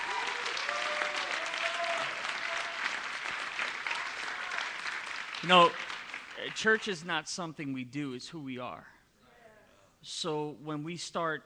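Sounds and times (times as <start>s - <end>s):
church congregation clapping hands: 0.0s - 7.1s
speech: 5.4s - 5.8s, 6.4s - 9.0s, 10.0s - 11.4s.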